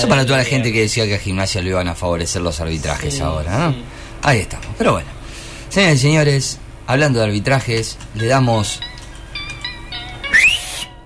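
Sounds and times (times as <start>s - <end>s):
speech: 0.0s - 8.9s
person mouth-whistling to imitate a referee's kickoff whistle: 10.3s - 11.0s.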